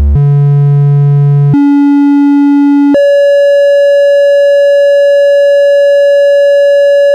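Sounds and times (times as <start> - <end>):
VCO triangle wave tone: 0.2 - 7.1.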